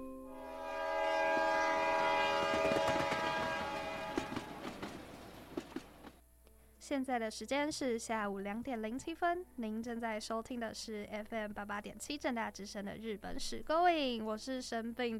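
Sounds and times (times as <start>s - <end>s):
Japanese limited express train horn: 0.3s - 5.6s
Japanese limited express train departing with rumble and wheel clacks: 0.6s - 6.2s
speech: 6.9s - 15.1s.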